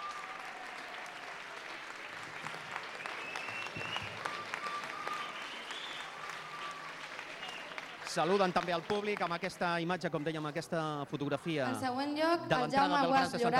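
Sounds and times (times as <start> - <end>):
faint tonal whistles or calls from audience: 0.0 - 1.3, 2.9 - 8.0
audience applause: 0.0 - 10.9
speech: 8.2 - 13.5.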